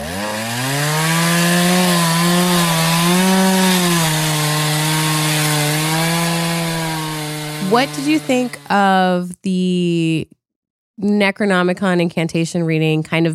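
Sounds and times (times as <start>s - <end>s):
chainsaw engine droning and revving: 0.0s - 9.0s
speech: 7.7s - 10.4s, 11.0s - 13.3s.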